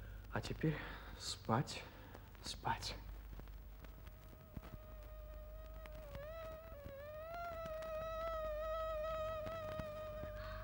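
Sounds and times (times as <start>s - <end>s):
speech: 0.4s - 3.0s
mosquitoes buzzing in a stable: 4.1s - 10.6s.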